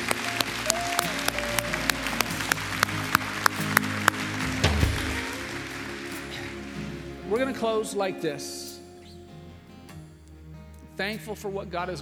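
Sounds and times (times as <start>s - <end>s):
audience applause in a large room: 0.0s - 8.1s
low hum of organ or crowd: 0.0s - 11.9s
speech: 7.3s - 8.6s, 11.0s - 11.9s.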